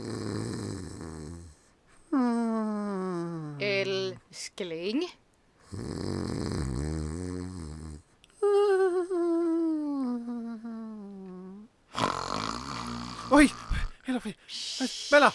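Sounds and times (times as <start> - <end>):
person snoring: 0.0 - 3.6, 5.6 - 8.8, 9.8 - 15.3
speech: 4.4 - 6.5, 14.2 - 15.3.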